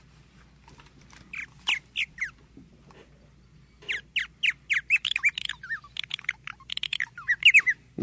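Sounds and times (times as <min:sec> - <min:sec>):
purple martin giving gurgling chirping calls: 0:01.3 - 0:02.4, 0:03.8 - 0:07.8.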